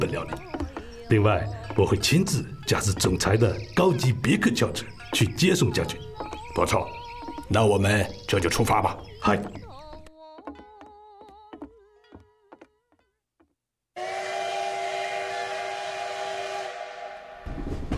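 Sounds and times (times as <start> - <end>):
speech: 0.0 - 0.5, 1.1 - 9.7
steam train whistle: 14.0 - 17.6.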